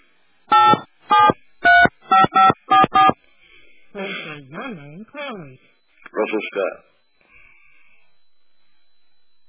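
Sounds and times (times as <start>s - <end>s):
telephone keypad dialing tones: 0.5s - 3.1s
speech: 6.3s - 6.9s.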